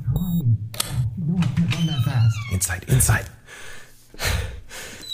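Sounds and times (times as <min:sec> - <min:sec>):
short high beep: 0:00.2 - 0:00.4
heavy door shutting with a mechanical whoosh: 0:01.3 - 0:02.8
speech: 0:02.6 - 0:04.4.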